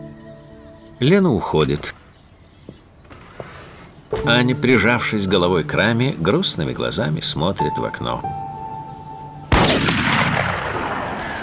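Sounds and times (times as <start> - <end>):
speech: 1.0 - 2.0, 4.2 - 8.4
assault rifle shots: 9.5 - 11.4.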